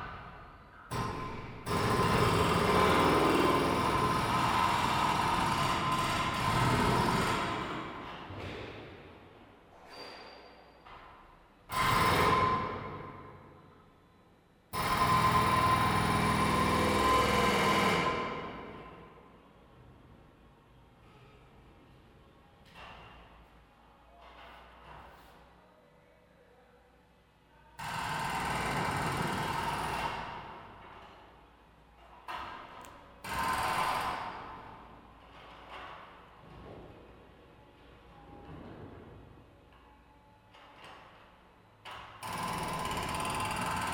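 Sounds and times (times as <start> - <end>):
jackhammer: 0.9 - 8.1, 11.7 - 13.3, 14.7 - 19.1, 27.8 - 30.6, 33.2 - 34.6, 42.2 - 43.9.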